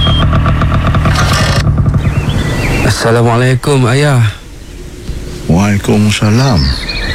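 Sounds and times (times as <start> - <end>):
motorcycle engine rumbling and revving: 0.0 - 5.5
speech: 3.0 - 4.4, 5.5 - 6.9.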